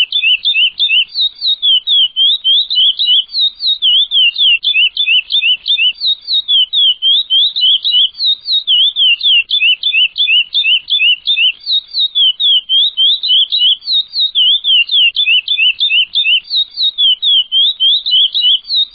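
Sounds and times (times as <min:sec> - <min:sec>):
Chestnut-bellied seed finch song: 0:00.0 - 0:18.9.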